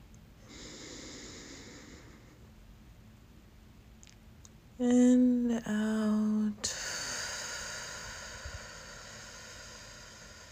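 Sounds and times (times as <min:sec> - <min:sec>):
deep breath in during a guided meditation breathing exercise: 0:00.4 - 0:02.4, 0:06.7 - 0:10.5
speech: 0:04.8 - 0:06.3.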